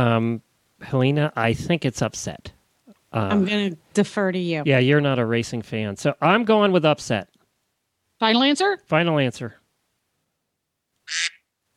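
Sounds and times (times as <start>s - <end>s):
speech: 0.0s - 2.5s, 3.1s - 7.3s, 8.2s - 9.6s, 11.1s - 11.3s
duck quack sound effect: 11.1s - 11.7s.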